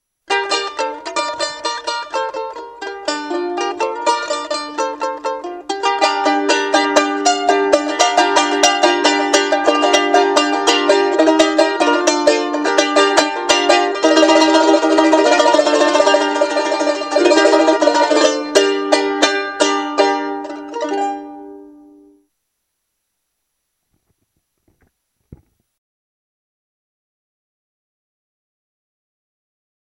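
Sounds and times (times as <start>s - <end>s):
charango playing: 0.3s - 22.3s.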